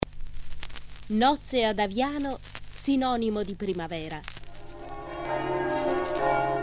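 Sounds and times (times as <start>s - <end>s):
speech: 1.1s - 4.4s
church bells ringing for a wedding procession: 4.5s - 6.6s.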